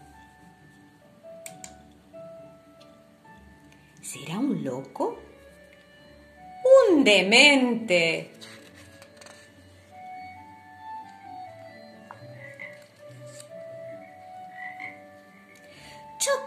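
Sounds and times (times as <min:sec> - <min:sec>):
speech: 0:04.1 - 0:05.3, 0:07.1 - 0:08.5
toad croaking: 0:12.0 - 0:16.4.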